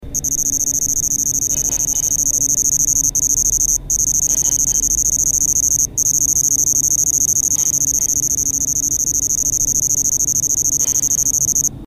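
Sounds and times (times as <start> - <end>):
Svercus palmetorum cricket: 0.0 - 11.8.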